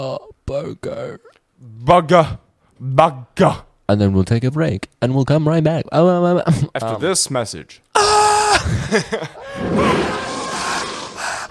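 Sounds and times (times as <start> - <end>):
speech: 0.0 - 10.3
person letting out a restrained strained scream: 8.0 - 8.7, 9.4 - 11.4.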